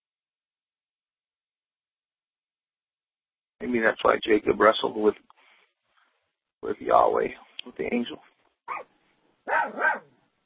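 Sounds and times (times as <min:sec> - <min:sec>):
speech: 0:03.6 - 0:05.3, 0:06.6 - 0:10.1
dog barking: 0:08.7 - 0:10.2.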